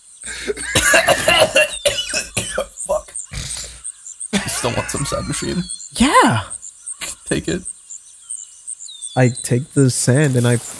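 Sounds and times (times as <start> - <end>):
laughter: 0.3 - 1.9, 2.7 - 3.8, 4.4 - 7.6
person coughing hard: 0.3 - 3.8, 4.4 - 5.6
speech: 4.7 - 6.6, 7.3 - 7.7, 9.2 - 10.7.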